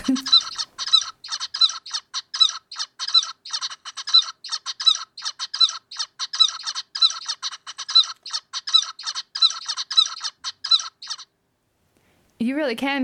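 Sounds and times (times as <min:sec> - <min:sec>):
zebra finch song with altered arrhythmic timing: 0:00.0 - 0:11.3
speech: 0:00.1 - 0:00.4, 0:12.7 - 0:13.0.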